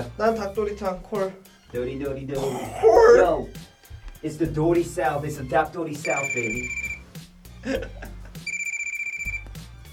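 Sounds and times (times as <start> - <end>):
speech: 0.0 - 6.8, 7.6 - 8.0
telephone bell ringing: 6.0 - 7.0, 8.4 - 9.6.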